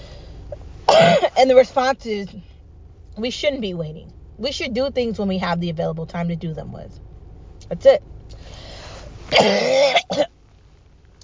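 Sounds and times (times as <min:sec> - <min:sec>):
person coughing: 0:00.9 - 0:01.4, 0:09.3 - 0:10.3
speech: 0:01.4 - 0:02.5, 0:03.2 - 0:07.0, 0:07.7 - 0:08.1, 0:09.3 - 0:10.3.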